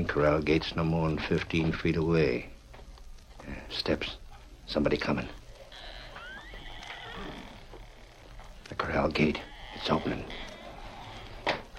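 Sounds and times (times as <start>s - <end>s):
speech: 0.0s - 2.6s, 3.4s - 5.4s, 8.8s - 10.5s
mustang horse neighing near a corral: 5.6s - 11.6s.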